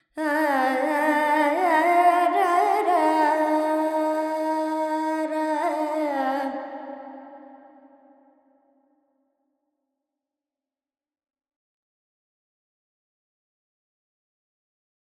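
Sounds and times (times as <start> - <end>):
woman singing Carnatic alaps in Lydian mode with reverb: 0.1 - 6.7.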